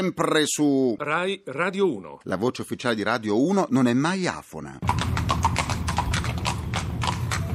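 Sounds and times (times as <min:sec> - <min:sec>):
speech: 0:00.0 - 0:05.5
horse hooves clip-clopping: 0:04.8 - 0:07.5.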